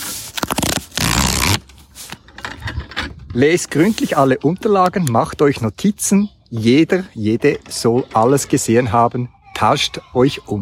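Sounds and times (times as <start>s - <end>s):
paper envelope tearing open: 0.0s - 2.1s
speech: 3.4s - 10.6s.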